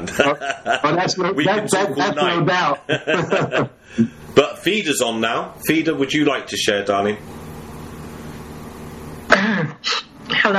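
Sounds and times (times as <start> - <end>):
laughter: 0.0 - 6.0, 9.2 - 10.5
speech: 0.1 - 7.4
person coughing after coming in the door: 9.3 - 10.1.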